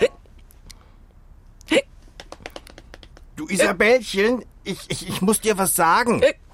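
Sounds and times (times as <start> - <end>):
sharp gulping hiccups: 0.0 - 0.2
faint quick clicking breaths: 0.6 - 1.2
speech: 3.5 - 6.4.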